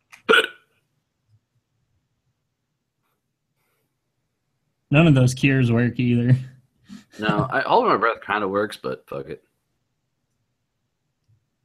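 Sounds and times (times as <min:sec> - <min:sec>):
sharp hiccup: 0:00.2 - 0:00.7
speech: 0:04.9 - 0:06.5, 0:07.2 - 0:09.5.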